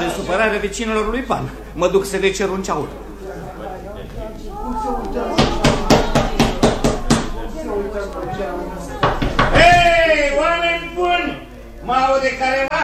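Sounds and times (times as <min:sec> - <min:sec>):
people talking loudly: 0:00.0 - 0:12.8
speech: 0:00.2 - 0:03.0, 0:11.9 - 0:12.8
sharp knocks on a neighbour's door: 0:05.3 - 0:07.5, 0:09.0 - 0:10.2.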